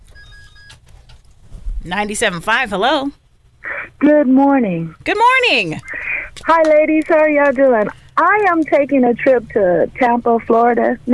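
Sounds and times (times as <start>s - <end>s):
telephone ringing with a thin electronic trill: 0.1s - 0.8s
speech: 1.8s - 3.2s, 4.0s - 5.9s, 6.5s - 11.1s.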